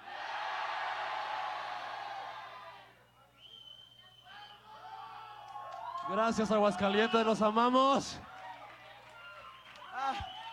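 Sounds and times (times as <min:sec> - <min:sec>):
concert crowd shouting in unison: 0:00.0 - 0:02.9
concert crowd cheering: 0:00.0 - 0:03.0, 0:04.7 - 0:10.5
speech: 0:06.1 - 0:08.3.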